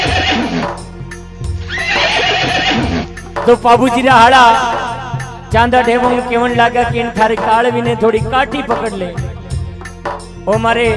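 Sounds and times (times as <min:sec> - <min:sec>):
mare whinnying: 0:00.0 - 0:00.8, 0:01.6 - 0:03.2
speech: 0:03.4 - 0:09.2, 0:10.0 - 0:10.9.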